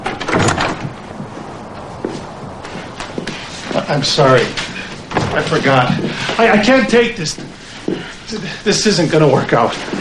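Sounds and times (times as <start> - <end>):
front door being pulled open with a rustling scraping burst: 0.0 - 7.4
soft scattered steps or knocks: 0.9 - 9.9
speech: 3.9 - 4.7, 5.3 - 7.5, 8.3 - 9.9.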